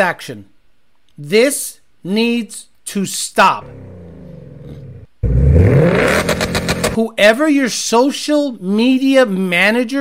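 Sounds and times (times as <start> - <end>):
speech: 0.0 - 0.5, 1.2 - 4.1, 7.0 - 9.9
car engine slammed against the rev limiter: 4.7 - 7.0.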